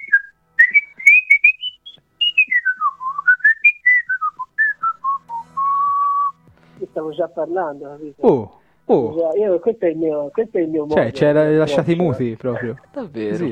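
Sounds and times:
expert whistler whistling a wandering melody: 0:00.0 - 0:06.4
speech: 0:07.0 - 0:13.5.

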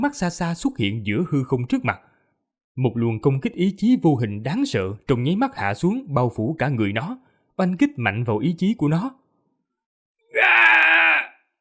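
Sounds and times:
speech: 0:00.0 - 0:02.1, 0:02.8 - 0:09.2
monstrous beast howling in pain: 0:10.3 - 0:11.5.

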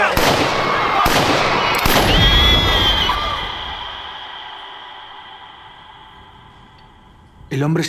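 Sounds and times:
gunshots fired into the air: 0:00.1 - 0:05.5
dense loud wash of noise in a panic scene: 0:00.2 - 0:07.3
speech: 0:07.6 - 0:07.8.

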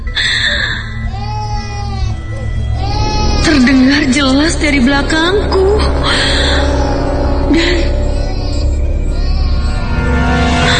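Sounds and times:
small child crying: 0:00.6 - 0:03.6, 0:05.8 - 0:10.7
speech: 0:04.5 - 0:06.5, 0:07.6 - 0:07.9.

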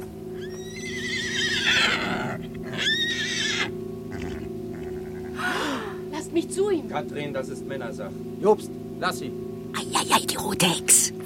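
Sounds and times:
frightened trembling horse neighing: 0:00.4 - 0:06.0
speech: 0:06.5 - 0:09.4, 0:10.1 - 0:11.2.

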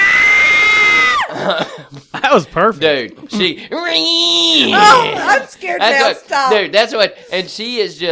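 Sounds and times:
woman screaming: 0:00.0 - 0:01.3, 0:04.3 - 0:05.4
speech: 0:01.5 - 0:08.0.

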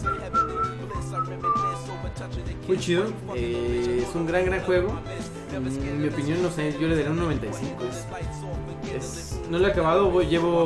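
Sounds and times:
video game character whistling a little tune while walking: 0:00.0 - 0:02.1
rhythmic low accompaniment: 0:00.0 - 0:10.6
speech: 0:02.7 - 0:10.6.

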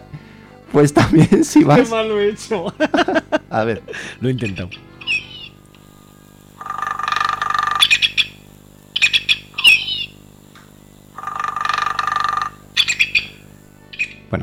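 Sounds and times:
speech: 0:00.7 - 0:05.0
laughter: 0:00.9 - 0:04.7
woodpecker calling with harsh squawks and buzzy rattling bursts: 0:04.4 - 0:05.6, 0:06.6 - 0:10.2, 0:11.2 - 0:14.3.

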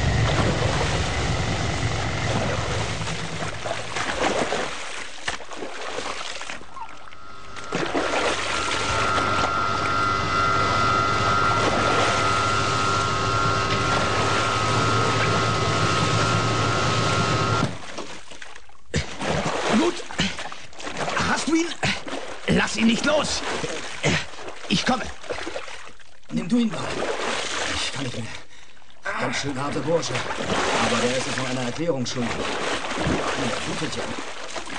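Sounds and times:
driverless motorboat engine droning while racing toward the coast: 0:00.0 - 0:04.7, 0:06.6 - 0:17.8, 0:29.1 - 0:31.6
rushing water: 0:00.0 - 0:28.3, 0:29.1 - 0:34.7
speech: 0:24.9 - 0:25.2, 0:26.5 - 0:27.1, 0:29.3 - 0:34.4.

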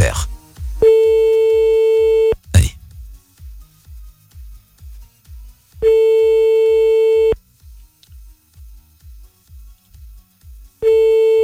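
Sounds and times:
low regular thumping beat: 0:00.0 - 0:01.3, 0:02.4 - 0:03.2
telephone ringback tones of an unanswered call: 0:05.9 - 0:07.4, 0:10.8 - 0:11.4.

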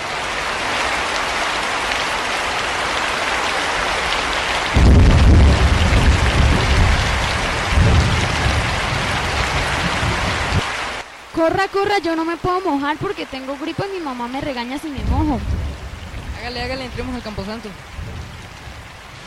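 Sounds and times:
heavy rain at stairs to a cemetery: 0:00.0 - 0:19.2
low thunder rumbles: 0:04.7 - 0:10.7, 0:15.0 - 0:19.2
speech: 0:11.4 - 0:15.7, 0:16.4 - 0:18.2.

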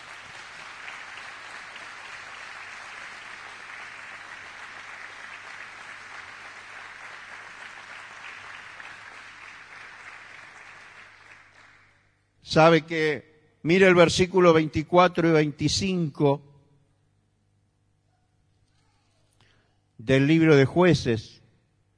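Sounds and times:
church congregation applauding: 0:00.0 - 0:12.2
speech: 0:12.5 - 0:16.5, 0:20.1 - 0:21.4.

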